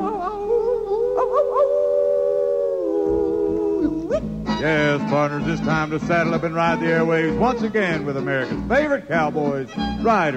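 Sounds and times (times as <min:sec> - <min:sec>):
long loud howl at the moon: 0:00.2 - 0:04.2
speech: 0:04.6 - 0:10.3.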